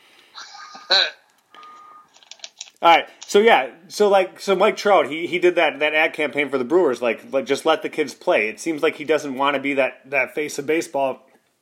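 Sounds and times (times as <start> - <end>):
speech: 0.9 - 1.2, 2.8 - 11.3
truck reversing alarm beeping: 1.5 - 2.1.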